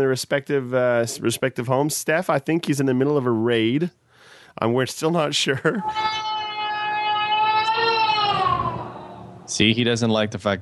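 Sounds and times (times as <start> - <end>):
speech: 0.0 - 4.0, 4.6 - 6.3, 9.5 - 10.5
child crying in a long wail: 5.7 - 9.5.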